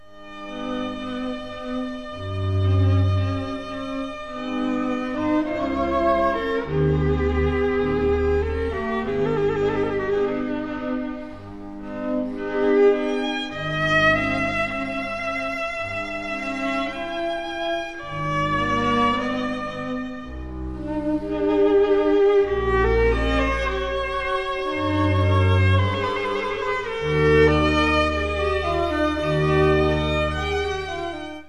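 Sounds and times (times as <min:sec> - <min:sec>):
classical music: 0:00.0 - 0:31.4.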